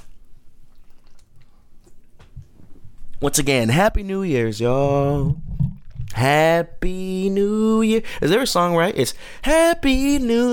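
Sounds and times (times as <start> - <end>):
person sipping a drink: 0.0 - 2.1
speech: 3.2 - 5.5, 6.2 - 10.5.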